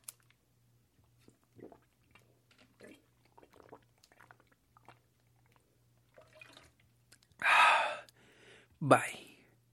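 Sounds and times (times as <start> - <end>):
sipping and swallowing water: 1.0 - 8.2
breathy exhale of relief after drinking water: 7.4 - 8.7
speech: 8.8 - 9.2.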